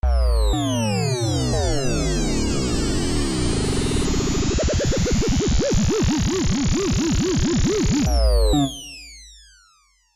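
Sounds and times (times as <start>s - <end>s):
electro falling synth: 0.0s - 9.7s.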